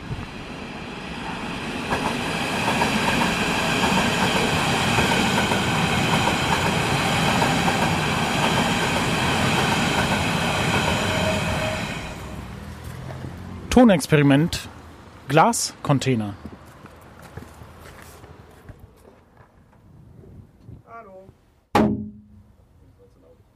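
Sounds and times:
S-Bahn suburban electric train passing: 0.0 - 15.7
speech: 13.8 - 16.5.

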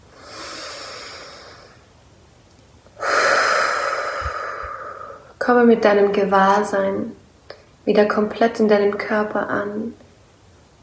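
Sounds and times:
rushing exhale through the mouth: 0.0 - 1.8, 3.0 - 5.3
deep breath in: 0.1 - 1.8, 3.0 - 5.3
speech: 5.5 - 7.2, 7.9 - 10.0.

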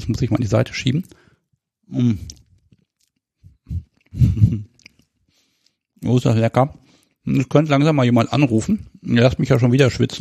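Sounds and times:
speech: 0.0 - 1.2, 1.9 - 2.4, 3.7 - 4.7, 6.0 - 10.1
person chewing a piece of cake: 2.1 - 6.1.

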